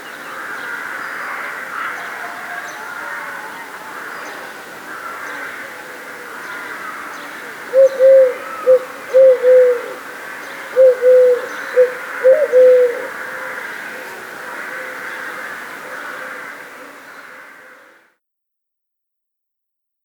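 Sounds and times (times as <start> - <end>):
collared dove cooing: 7.6 - 14.3.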